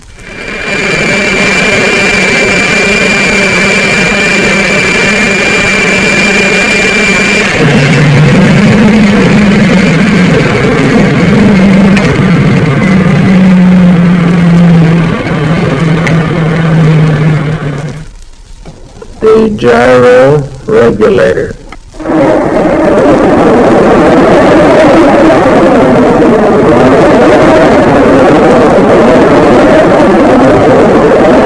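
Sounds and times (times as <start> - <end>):
ventilator motors humming aboard a surfaced submarine: 0.0 - 31.4
speech: 21.0 - 21.5.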